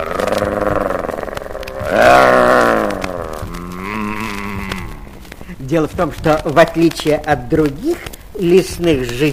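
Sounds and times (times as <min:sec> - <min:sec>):
bear growling and humming with pleasure: 0:00.0 - 0:05.4
speech: 0:05.7 - 0:09.3.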